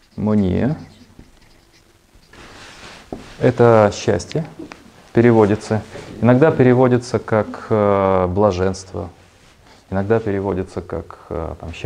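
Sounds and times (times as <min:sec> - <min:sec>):
pen or chalk writing on a board: 0:00.0 - 0:03.6
speech: 0:00.2 - 0:00.9, 0:03.4 - 0:09.2, 0:09.9 - 0:11.8.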